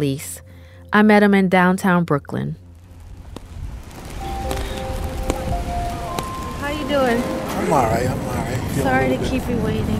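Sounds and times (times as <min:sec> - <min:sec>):
speech: 0:00.0 - 0:02.6, 0:06.9 - 0:09.9
faint tonal street sounds humming: 0:02.5 - 0:09.9
steady rain pouring down outdoors: 0:02.7 - 0:09.9.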